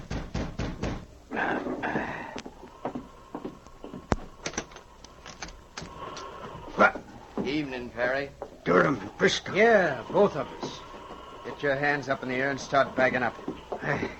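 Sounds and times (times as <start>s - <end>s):
sharp raps on a wooden cabin door: 0.0s - 1.1s
brief creaking whirring noise: 0.0s - 14.1s
speech: 7.6s - 10.8s, 11.6s - 14.1s.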